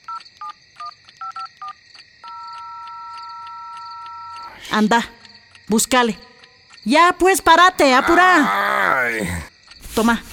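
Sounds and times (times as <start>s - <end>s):
telephone keypad dialing tones: 0.0s - 4.6s
steady continuous phone tone: 0.0s - 5.6s
speech: 4.7s - 10.3s.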